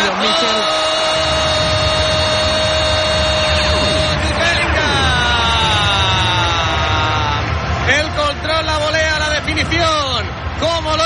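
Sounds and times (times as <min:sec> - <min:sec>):
home supporters chanting in sweeping waves at Montilivi stadium: 0:00.0 - 0:08.2
dense stadium crowd of home supporters cheering: 0:00.0 - 0:11.0.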